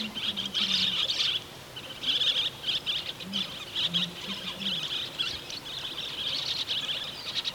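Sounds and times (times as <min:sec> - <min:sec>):
Andean parakeet chatter: 0:00.0 - 0:07.5.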